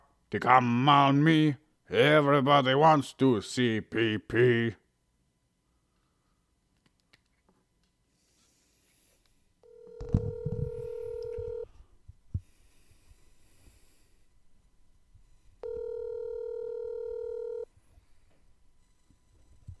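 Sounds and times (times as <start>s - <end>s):
speech: 0.3s - 4.8s
telephone dialing tones before a call: 9.6s - 11.8s, 15.6s - 17.7s.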